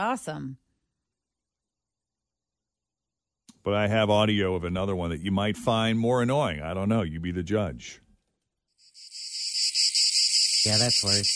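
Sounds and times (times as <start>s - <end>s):
speech: 0.0s - 0.6s, 3.6s - 8.0s, 10.6s - 11.3s
dense high-pitched insect buzzing and chirping at night: 8.8s - 11.3s.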